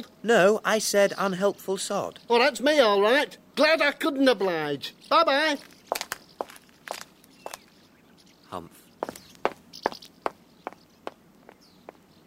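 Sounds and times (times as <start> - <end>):
speech: 0.2 - 5.8, 8.5 - 8.8
footsteps walking at an even pace: 5.6 - 7.7, 9.0 - 12.2.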